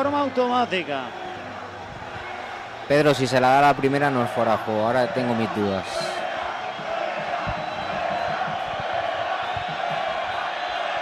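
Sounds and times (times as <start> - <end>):
speech: 0.0 - 1.2, 2.9 - 6.2
large stadium crowd roaring and shouting: 0.0 - 11.0.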